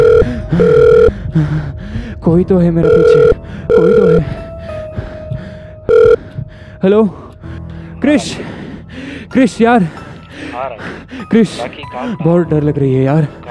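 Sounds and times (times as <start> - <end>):
phone ringing with a steady electronic tone: 0.0 - 1.1, 2.8 - 4.5, 5.9 - 6.2
speech: 2.3 - 4.4, 6.8 - 7.2, 8.0 - 8.6, 9.3 - 10.0, 10.6 - 13.4.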